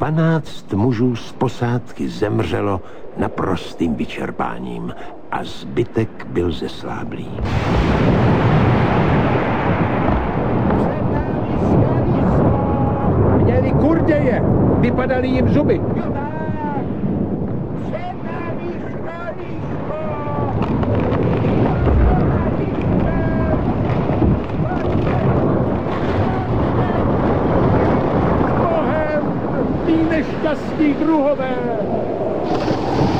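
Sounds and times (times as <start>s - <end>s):
speech: 0.0s - 8.5s, 14.1s - 16.2s
stormy wind roaring: 0.0s - 33.1s
stormy waves crashing and churning: 7.2s - 14.3s, 15.5s - 33.1s.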